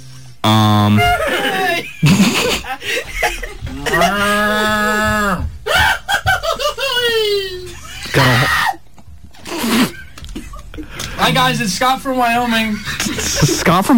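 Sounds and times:
speech: 0.4s - 1.2s, 1.8s - 5.5s, 11.3s - 13.9s
laughter: 0.9s - 8.8s, 9.4s - 11.4s, 12.5s - 13.9s
cows mooing: 3.6s - 5.5s.

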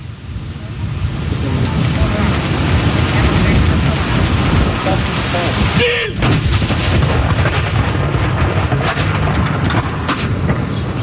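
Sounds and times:
crowd rumbling: 0.0s - 11.0s
wind noise: 0.0s - 11.0s
artillery gun salute firing: 3.0s - 11.0s.

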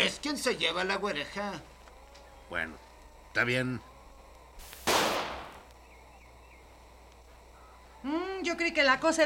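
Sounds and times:
speech: 0.0s - 1.7s, 2.5s - 3.9s, 8.0s - 9.2s
single gunshot fired at a target: 4.8s - 5.6s.

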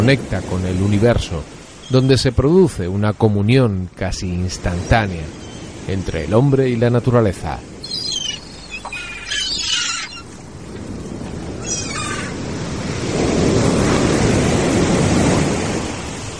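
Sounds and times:
speech: 0.0s - 7.7s
big waves crashing onto the north beach on the Atlantic Ocean: 0.0s - 16.3s
brief high-pitched chirps: 7.8s - 10.3s.

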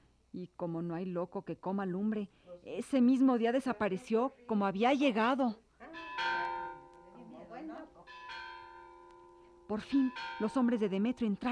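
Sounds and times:
speech: 0.3s - 5.6s, 9.7s - 11.5s
church bells ringing: 5.9s - 11.5s.

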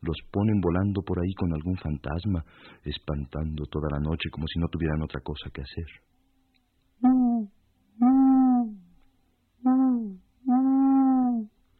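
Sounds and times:
speech: 0.0s - 6.1s
owl hooting at night: 7.0s - 8.9s, 9.6s - 11.5s.

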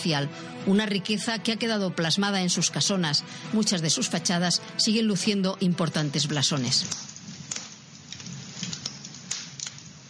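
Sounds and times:
speech: 0.0s - 7.1s
fire crackling with sharp pops and snaps: 6.1s - 10.0s
low continuous roaring rumble of fire: 6.8s - 10.0s.

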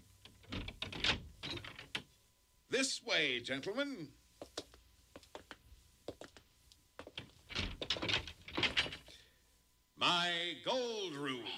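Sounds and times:
lock of a treasure house door being unlocked and pushed open: 0.2s - 2.1s, 7.2s - 9.1s
speech: 2.7s - 4.2s, 10.0s - 11.5s.

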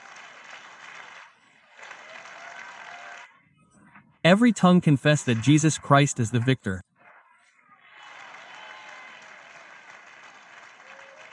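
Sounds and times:
audience applause at a religious gathering: 0.0s - 3.3s, 4.8s - 6.5s, 7.9s - 11.3s
speech: 4.3s - 6.9s.

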